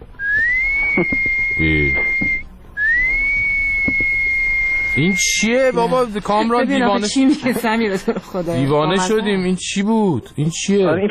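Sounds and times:
whistled tones: 0.2 - 6.4
laughter: 0.8 - 2.0, 5.0 - 9.4
speech: 1.0 - 2.2, 5.0 - 11.0.

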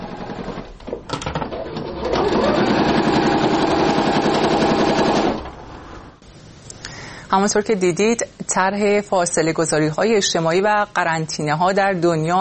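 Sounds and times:
sewing machines stitching medical gowns in a workshop: 0.0 - 6.1
speech: 7.3 - 12.3.

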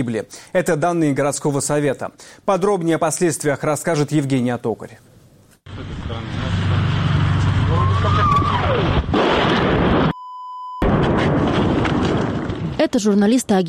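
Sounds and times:
speech: 0.0 - 6.6, 12.8 - 13.6
rising whistle of shelling: 7.7 - 8.8
artillery shelling explosions in a city: 8.6 - 10.2, 10.8 - 13.0
steady electronic beep: 10.1 - 10.8.

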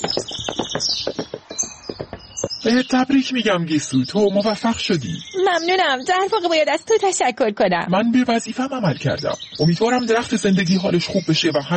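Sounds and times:
hoofbeats of a horse carrying a rider: 0.0 - 2.8
speech: 2.6 - 11.7.

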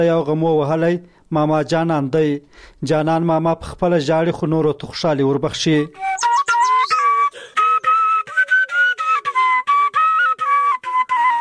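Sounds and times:
speech: 0.0 - 6.2
traditional shepherd's flute melody played by an elderly man: 6.0 - 11.3.

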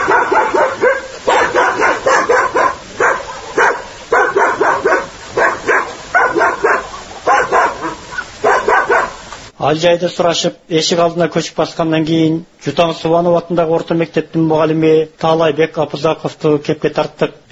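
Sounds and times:
village dog barking at arrivals: 0.0 - 9.3
speech: 9.7 - 17.5.

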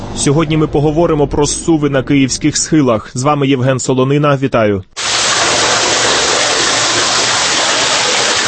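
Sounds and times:
speech: 0.2 - 5.1
water trickling and rushing through an underground drainage tunnel: 5.0 - 8.4.

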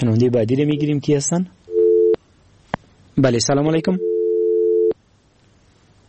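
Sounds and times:
speech: 0.0 - 1.6, 3.2 - 4.1
faint hiss: 0.0 - 6.0
telephone busy tone after a dropped line: 1.7 - 2.2, 4.0 - 5.0.

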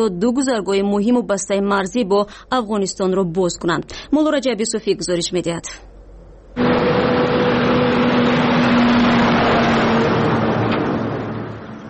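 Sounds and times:
speech: 0.0 - 5.9
heavy cargo truck engines rumbling on the Khyber Pass toward the Afghan border: 6.4 - 11.8.

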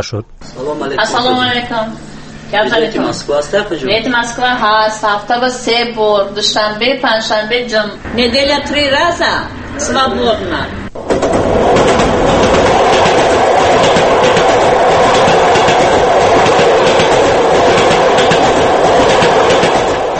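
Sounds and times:
speech: 0.0 - 12.6
passenger train on the Dushanbe-Moscow route clattering along the rails: 8.1 - 20.1.

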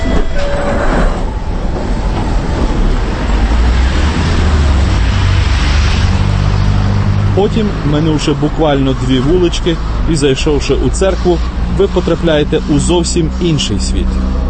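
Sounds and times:
brief high squeal of metro train: 0.0 - 1.2
London Underground metro train wheels rumbling and rattling on track: 0.0 - 14.4
speech: 7.4 - 14.4.

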